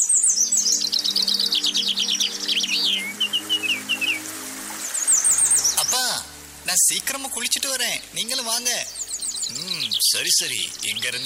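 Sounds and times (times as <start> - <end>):
several birds chirping and trilling: 0.0 - 11.2
waterfall rushing: 0.8 - 11.2
speech: 6.9 - 11.2.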